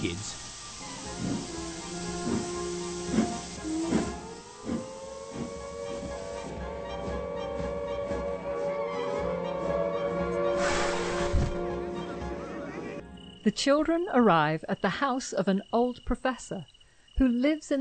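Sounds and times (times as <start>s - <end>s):
speech: 0.0s - 0.4s, 13.5s - 17.7s
steam train puffing bursts: 0.0s - 8.3s, 10.5s - 11.8s
steam train hissing at a station: 0.0s - 12.0s.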